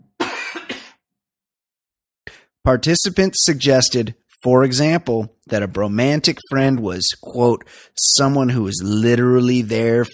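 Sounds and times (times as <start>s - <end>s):
cough: 0.1s - 1.1s
speech: 2.3s - 10.1s.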